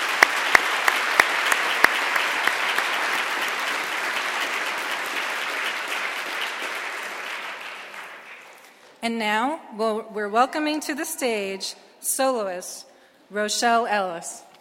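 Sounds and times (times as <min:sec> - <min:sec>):
audience applause: 0:00.0 - 0:08.8
sharp handclaps: 0:00.0 - 0:08.9
speech: 0:09.0 - 0:14.5.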